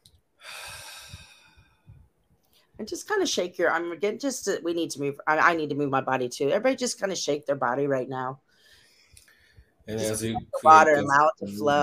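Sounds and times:
deep breath drawn in during a group movement lesson: 0.4s - 2.0s, 8.5s - 9.8s
speech: 2.8s - 8.4s, 9.9s - 11.8s.

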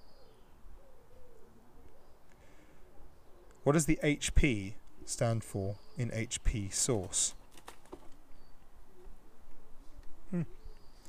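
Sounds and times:
low steady background: 0.0s - 11.0s
speech: 3.6s - 7.4s, 10.3s - 10.6s
birds landing and shuffling on roof overhead: 7.0s - 8.4s.

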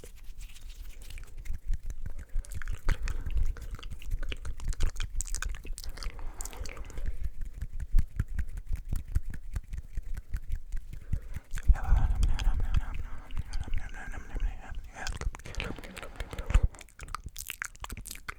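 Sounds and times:
fast aggressive mouth sounds: 1.3s - 18.2s
fast aggressive hand sounds: 6.1s - 16.9s.

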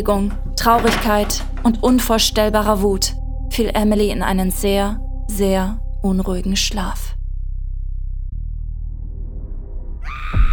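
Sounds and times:
speech: 0.0s - 7.2s
low rumbling drone: 0.0s - 10.5s
loud piercing scream: 10.0s - 10.5s.

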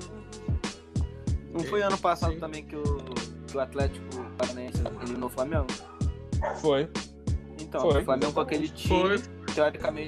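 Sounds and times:
speech: 1.6s - 7.0s, 7.7s - 10.0s
dog barking: 4.1s - 6.7s.

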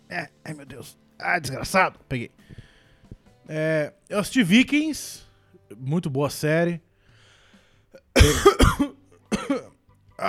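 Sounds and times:
speech: 0.1s - 2.6s, 3.5s - 6.9s, 7.9s - 8.9s
harsh coughing: 8.0s - 9.8s.

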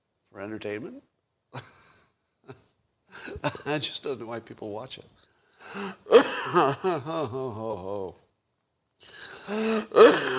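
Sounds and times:
speech: 0.3s - 1.7s, 3.3s - 8.2s, 9.5s - 10.3s
person coughing: 6.1s - 7.2s, 9.5s - 10.3s
person clearing throat: 6.1s - 7.5s, 9.5s - 10.3s.

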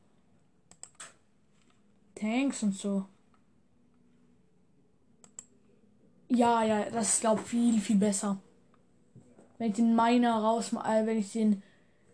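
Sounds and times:
keyboard clicks: 0.7s - 1.2s, 5.2s - 5.5s
computer mouse clicks while clicking through a card deck in a game: 0.7s - 1.8s, 5.2s - 5.6s
speech: 2.2s - 3.2s, 6.4s - 8.5s, 9.6s - 11.7s.

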